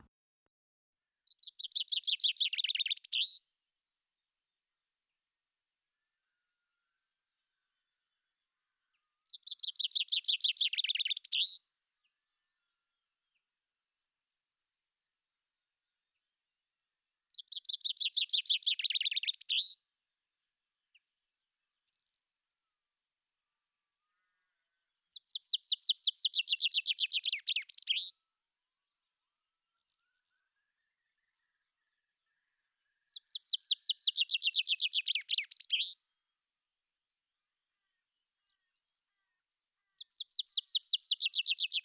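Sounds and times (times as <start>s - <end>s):
caged chaffinch singing a rattling song phrase: 1.2s - 3.4s, 9.3s - 11.6s, 17.3s - 19.8s, 25.1s - 28.1s, 33.1s - 36.0s, 39.9s - 41.8s.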